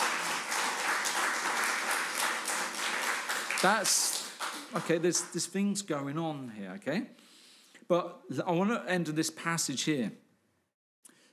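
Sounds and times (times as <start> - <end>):
crowd applauding: 0.0 - 5.6
speech: 3.6 - 7.2, 7.9 - 10.2.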